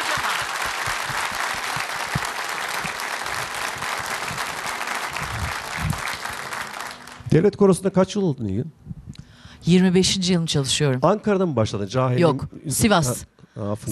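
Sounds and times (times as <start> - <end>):
audience applause after a folk music performance: 0.0 - 7.3
speech: 7.3 - 8.8, 9.6 - 13.8.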